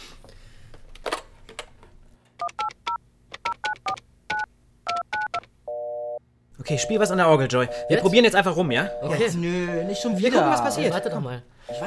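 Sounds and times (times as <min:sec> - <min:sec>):
telephone keypad dialing tones: 0:02.4 - 0:06.2, 0:08.9 - 0:11.8
speech: 0:06.7 - 0:11.8.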